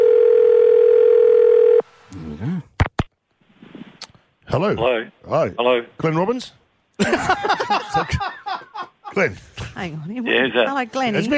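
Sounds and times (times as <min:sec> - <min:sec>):
telephone dial tone: 0:00.0 - 0:01.8
speech: 0:04.5 - 0:08.4, 0:09.1 - 0:11.3
laughter: 0:07.0 - 0:09.3.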